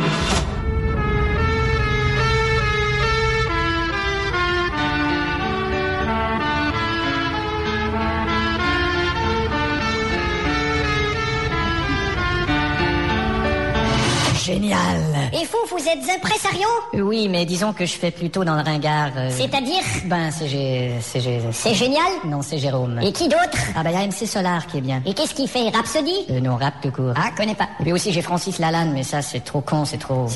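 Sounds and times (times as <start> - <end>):
police car siren playing a melodic tune of stepped sustained tones: 0.2 - 14.3
speech: 15.4 - 30.3.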